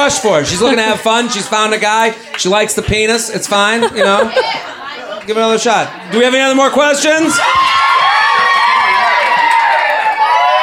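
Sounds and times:
speech: 0:00.1 - 0:07.9
laughter: 0:00.2 - 0:06.4
large audience screaming and cheering: 0:07.0 - 0:10.6.

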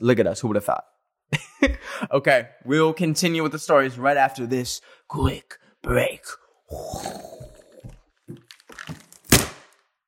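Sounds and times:
speech: 0:00.0 - 0:07.5
crinkly crunching of a makeshift hideout being pushed around: 0:08.3 - 0:09.4
sharp crack of a makeshift hideout breaking from being crunched: 0:08.5 - 0:09.9.

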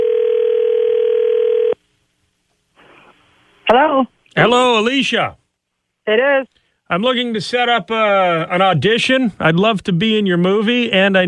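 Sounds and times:
telephone dial tone while placing a call: 0:00.0 - 0:01.8
speech: 0:04.4 - 0:05.4, 0:06.1 - 0:11.2.

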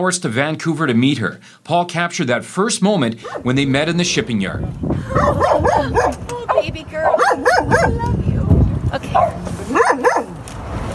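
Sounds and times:
speech: 0:00.0 - 0:08.3, 0:08.9 - 0:10.1
rescue dog barking and yelping excitedly in a shipping yard: 0:03.2 - 0:03.5, 0:05.1 - 0:08.1, 0:09.1 - 0:10.4.

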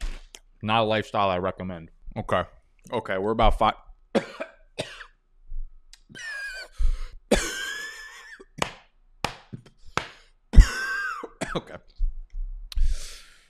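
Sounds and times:
speech: 0:00.6 - 0:04.9, 0:11.6 - 0:11.8
person coughing harshly while choking on a protein chip: 0:04.2 - 0:05.2, 0:06.1 - 0:08.6, 0:10.6 - 0:11.8
strained raspy gasps: 0:06.4 - 0:07.3, 0:12.8 - 0:13.4.

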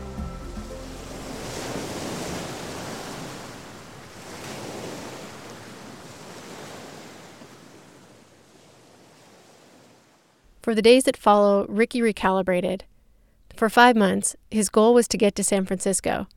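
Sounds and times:
ocean waves on shore: 0:00.0 - 0:10.5
speech: 0:10.7 - 0:12.9, 0:13.6 - 0:16.3.

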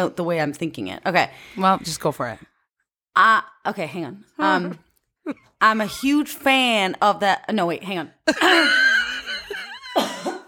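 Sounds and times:
speech: 0:00.0 - 0:02.5, 0:03.2 - 0:08.9
woman coughing: 0:09.9 - 0:10.4.

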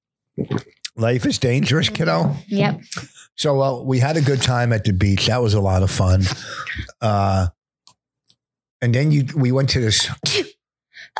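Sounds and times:
speech: 0:00.4 - 0:07.6, 0:08.8 - 0:11.1
person sneezing: 0:10.2 - 0:10.6.

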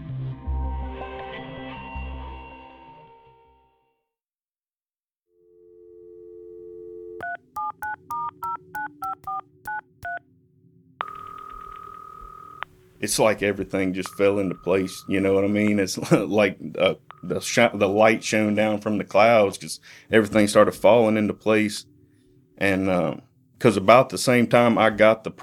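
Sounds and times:
telephone ringing tone: 0:05.4 - 0:10.2, 0:11.0 - 0:18.8
touch-tone dialing beeps: 0:07.2 - 0:10.2, 0:11.0 - 0:12.7, 0:13.9 - 0:15.8, 0:17.0 - 0:18.2
low hum: 0:10.3 - 0:19.4
speech: 0:13.0 - 0:21.9, 0:22.6 - 0:25.4.

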